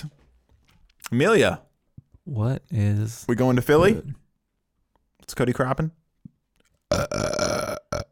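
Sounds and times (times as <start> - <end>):
speech: 1.1 - 1.7, 2.3 - 4.2, 5.2 - 6.0, 6.9 - 7.7
person burping: 6.9 - 8.1.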